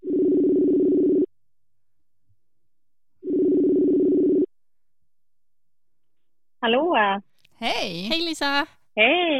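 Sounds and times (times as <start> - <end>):
outgoing phone call ringing tone: 0.0 - 1.3, 3.2 - 4.5
speech: 6.6 - 9.3.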